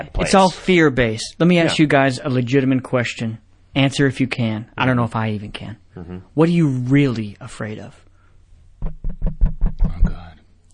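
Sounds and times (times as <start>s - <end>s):
speech: 0.2s - 8.0s
knocking on a door: 8.8s - 10.3s.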